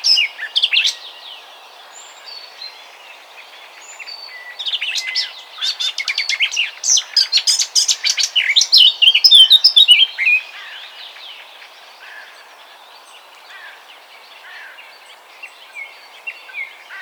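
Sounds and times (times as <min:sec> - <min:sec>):
Eurasian blackcap Sylvia atricapilla singing: 0:04.7 - 0:10.4.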